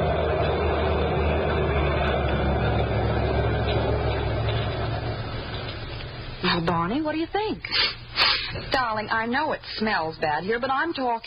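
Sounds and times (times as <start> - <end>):
truck engine rumbling: 0.0 - 7.0
speech: 6.5 - 11.2.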